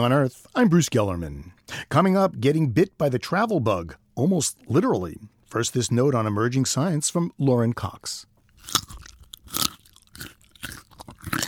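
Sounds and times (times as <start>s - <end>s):
speech: 0.0s - 9.0s
crisp crunchy bites into a raw vegetable: 8.5s - 11.4s.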